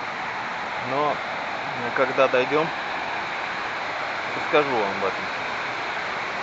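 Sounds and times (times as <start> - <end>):
mountain river rushing: 0.0 - 6.4
speech: 0.9 - 2.8, 4.4 - 5.4.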